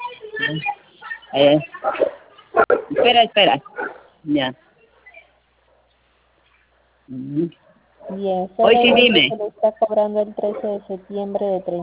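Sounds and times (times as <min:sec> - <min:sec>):
speech: 0:00.5 - 0:02.2, 0:03.0 - 0:04.6, 0:07.1 - 0:11.8
puppy barking: 0:01.8 - 0:04.1.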